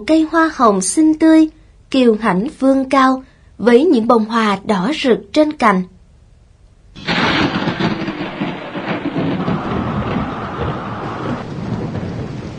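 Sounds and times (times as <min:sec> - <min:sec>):
speech: 0:00.0 - 0:05.9
deep thunder rumbling: 0:07.0 - 0:12.5
gusting wind: 0:07.0 - 0:12.5
heavy rain hissing: 0:07.0 - 0:12.5.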